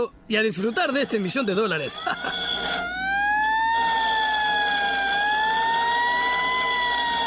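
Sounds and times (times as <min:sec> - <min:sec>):
speech: 0:00.0 - 0:03.0
loud emergency siren wailing: 0:01.9 - 0:07.2.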